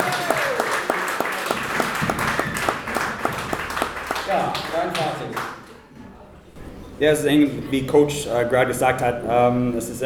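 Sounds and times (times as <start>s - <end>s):
applause after congratulations on a regional American football championship: 0.0s - 5.7s
speech: 4.3s - 5.6s, 7.0s - 10.0s.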